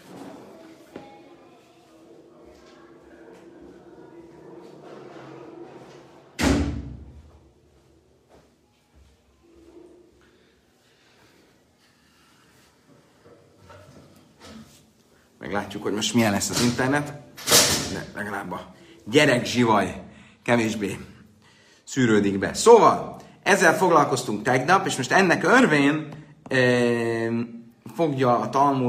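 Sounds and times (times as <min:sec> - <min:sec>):
door shutting with a solid thud: 0:06.3 - 0:07.2
speech: 0:15.5 - 0:17.2, 0:17.9 - 0:21.1, 0:21.9 - 0:28.8.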